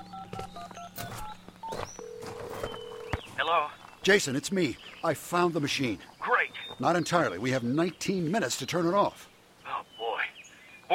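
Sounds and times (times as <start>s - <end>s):
cell phone keypad beeps while dialing: 0.0s - 3.2s
speech: 3.5s - 6.1s, 6.8s - 9.3s.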